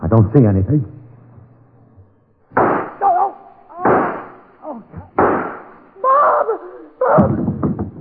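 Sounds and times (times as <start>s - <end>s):
speech: 0.1s - 1.0s
gunshots fired from a door in a warehouse: 2.5s - 4.5s, 5.1s - 5.9s
startled people shouting and crying: 2.8s - 7.6s.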